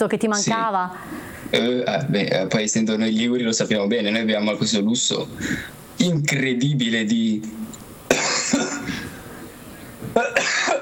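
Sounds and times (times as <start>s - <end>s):
speech: 0.0s - 7.8s
harsh coughing fit: 8.1s - 9.2s, 10.1s - 10.8s.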